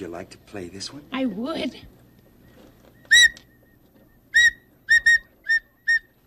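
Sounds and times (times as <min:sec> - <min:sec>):
speech: 0:00.0 - 0:02.0
shrill toy whistle toots: 0:03.1 - 0:03.5, 0:04.3 - 0:06.1.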